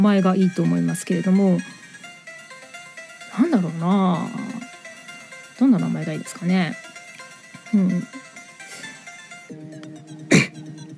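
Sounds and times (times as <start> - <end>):
speech: 0.0 - 1.8, 3.4 - 4.4, 5.6 - 6.8, 7.7 - 8.2
person coughing: 10.3 - 10.7.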